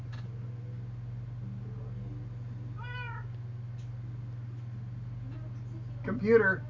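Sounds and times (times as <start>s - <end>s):
low electrical hum: 0.0s - 6.6s
recorded cat meow from a smart speaker: 2.8s - 3.3s
speech: 6.1s - 6.6s.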